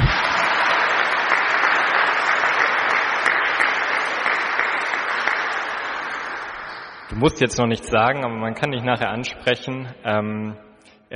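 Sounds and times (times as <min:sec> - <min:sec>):
crowd applauding: 0:00.0 - 0:07.3
speech: 0:07.2 - 0:11.1.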